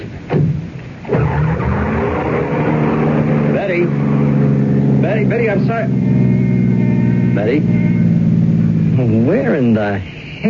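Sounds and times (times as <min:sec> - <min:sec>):
car engine revving hard and pulling away in a cloud of dust: 0:00.9 - 0:10.1
gritty car tire skid: 0:01.0 - 0:08.7
speech: 0:05.2 - 0:06.3, 0:07.4 - 0:07.9, 0:09.0 - 0:10.4.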